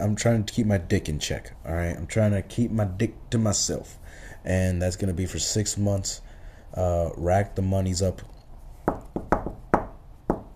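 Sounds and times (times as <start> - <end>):
speech: 0.0 - 8.3
hollow knocks on wood rapped by hand: 8.9 - 10.5.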